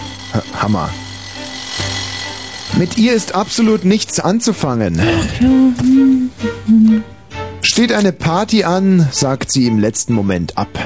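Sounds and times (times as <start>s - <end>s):
jackhammer rattling with a low hum: 0.0s - 5.0s
speech: 0.4s - 1.0s, 2.8s - 7.1s, 7.8s - 10.8s.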